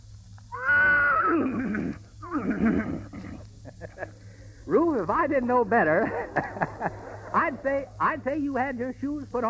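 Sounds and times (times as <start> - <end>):
faint hum: 0.0 - 9.4
person's voice imitating a horse whinny: 0.5 - 3.4
laughter: 3.6 - 4.2, 5.9 - 8.2
speech: 4.7 - 9.4.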